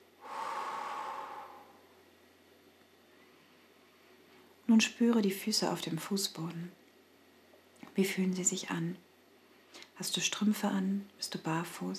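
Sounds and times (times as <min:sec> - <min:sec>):
slow deep exhale: 0:00.2 - 0:01.9
speech: 0:04.7 - 0:06.8, 0:08.0 - 0:09.1, 0:09.7 - 0:11.9.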